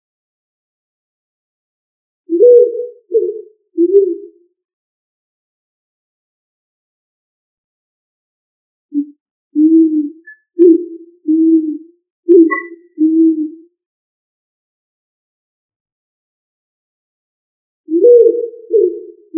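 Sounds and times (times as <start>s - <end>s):
pigeon cooing with soft low hollow coos: 2.3s - 4.4s, 9.0s - 13.6s, 17.9s - 19.3s.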